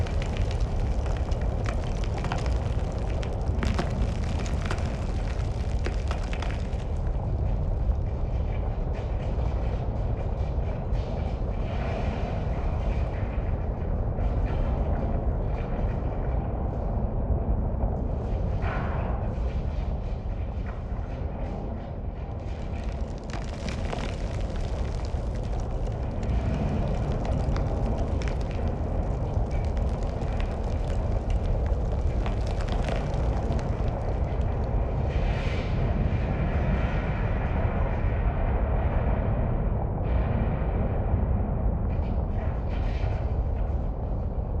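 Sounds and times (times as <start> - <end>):
tunnel interior ambience: 0.0 - 44.5.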